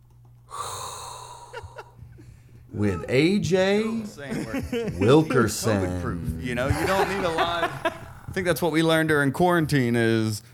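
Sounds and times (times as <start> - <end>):
sharp inhaled breath: 0.5 - 2.0
speech: 2.7 - 10.5
laughter: 3.8 - 8.5.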